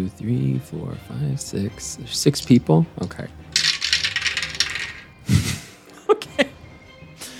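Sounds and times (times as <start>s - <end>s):
speech: 0.0s - 3.6s
percentile dice rolling on a table during a tabletop game: 3.6s - 5.1s.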